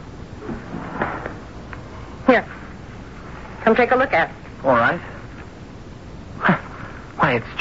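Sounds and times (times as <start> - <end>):
small locked drawer opening with scraping clunk: 0.4 - 1.4
speech: 2.3 - 2.5, 3.7 - 5.1, 7.3 - 7.6.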